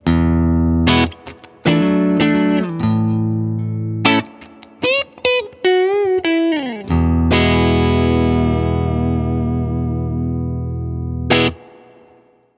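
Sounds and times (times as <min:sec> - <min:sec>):
clean guitar amp tone on middle channel: 0:00.0 - 0:12.5.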